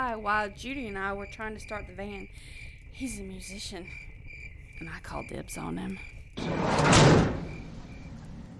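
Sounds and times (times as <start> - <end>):
speech: 0.0 - 4.1, 4.8 - 7.3
heavy van sliding door rolling along its track and shutting: 6.4 - 8.5.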